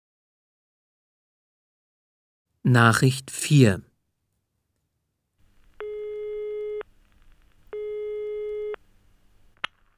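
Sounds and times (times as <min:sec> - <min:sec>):
speech: 0:02.6 - 0:03.9
telephone busy tone: 0:05.8 - 0:06.8, 0:07.8 - 0:08.8.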